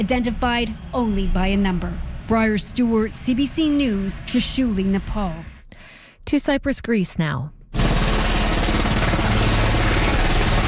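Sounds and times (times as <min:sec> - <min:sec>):
speech: 0:00.0 - 0:05.5, 0:06.2 - 0:07.6
helicopter rotor blades chopping at a port: 0:00.0 - 0:05.6, 0:07.7 - 0:10.6.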